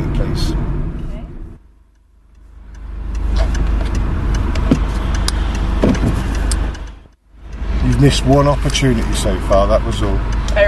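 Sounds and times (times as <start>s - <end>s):
learner car engine humming inside the vehicle: 0.0s - 10.6s
road rumble: 0.0s - 10.6s
clicks and thumps: 3.2s - 7.2s
speech: 8.0s - 10.4s.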